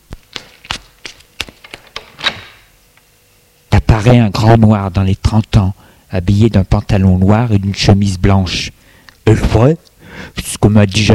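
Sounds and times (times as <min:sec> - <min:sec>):
woman's footsteps descending a staircase: 0:00.1 - 0:02.4
speech: 0:04.0 - 0:11.1.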